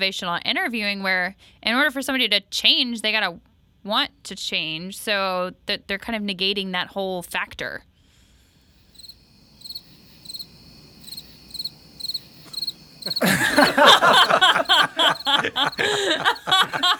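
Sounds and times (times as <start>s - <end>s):
speech: 0.0s - 7.9s, 13.1s - 16.9s
crickets chirping: 8.6s - 16.9s
loud laughter: 13.0s - 16.9s.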